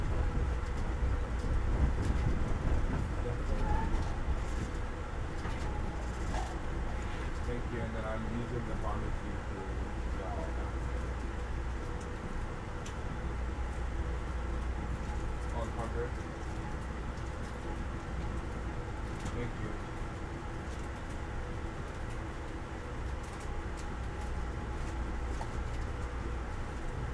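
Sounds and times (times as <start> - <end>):
faint rattles and clicks inside a moving train: 0.0 - 7.8, 14.9 - 21.2, 21.8 - 27.1
moving train rumble and hum: 0.0 - 27.1
voices talking inside a moving train: 3.0 - 4.8, 5.4 - 11.0, 15.4 - 16.2, 19.2 - 19.9.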